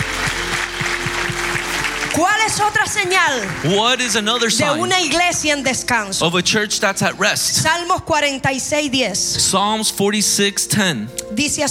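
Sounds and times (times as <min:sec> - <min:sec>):
church audience clapping: 0:00.0 - 0:05.4
speech: 0:02.2 - 0:11.6.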